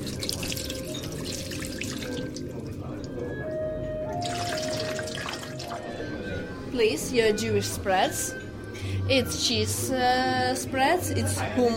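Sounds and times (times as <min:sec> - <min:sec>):
water poured from a pitcher into a bowl for ritual hand washing: 0:00.0 - 0:03.3, 0:04.2 - 0:05.9
speech: 0:06.8 - 0:08.4, 0:09.1 - 0:11.7.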